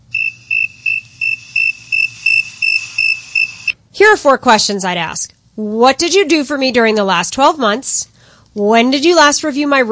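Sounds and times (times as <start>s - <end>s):
crickets chirping: 0.1s - 3.8s
speech: 4.0s - 9.9s.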